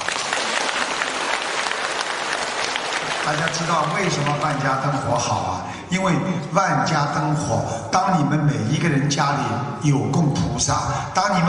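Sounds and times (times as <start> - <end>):
sustained applause from a large audience: 0.0 - 5.2
speech: 3.3 - 11.4.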